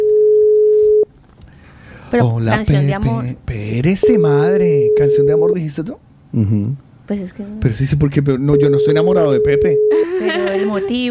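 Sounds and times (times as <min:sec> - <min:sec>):
single-pitched telephone call tone: 0:00.0 - 0:01.1, 0:04.0 - 0:05.5, 0:08.6 - 0:10.2
speech: 0:02.1 - 0:11.0
laughter: 0:10.0 - 0:11.0.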